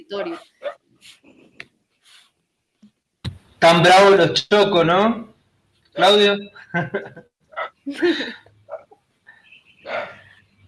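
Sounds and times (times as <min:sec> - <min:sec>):
speech: 0:00.0 - 0:01.3, 0:03.6 - 0:05.3, 0:06.0 - 0:08.5
dogs barking: 0:00.1 - 0:00.8, 0:07.6 - 0:07.8, 0:08.7 - 0:08.9, 0:09.8 - 0:10.3
laughter: 0:06.6 - 0:07.2.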